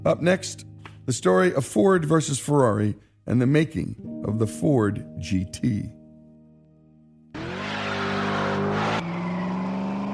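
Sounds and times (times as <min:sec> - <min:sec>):
speech: 0:00.0 - 0:06.0
American V8 engine idling and revving: 0:07.3 - 0:10.1.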